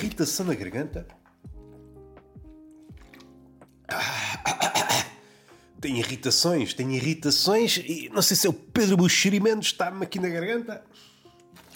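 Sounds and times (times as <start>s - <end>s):
speech: 0.2s - 1.2s, 5.8s - 11.1s
person swallowing water for an irritated throat: 1.0s - 5.2s.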